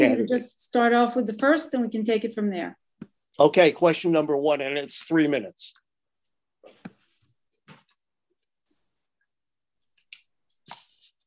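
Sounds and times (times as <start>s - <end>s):
speech: 0.0s - 2.8s, 3.4s - 5.8s
paper of questions rustling and crinkling: 10.6s - 11.2s.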